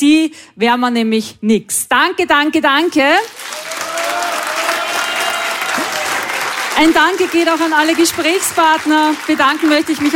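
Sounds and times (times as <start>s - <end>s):
speech: 0.0s - 3.6s, 6.8s - 10.1s
sustained applause from a sizable audience: 3.2s - 10.1s.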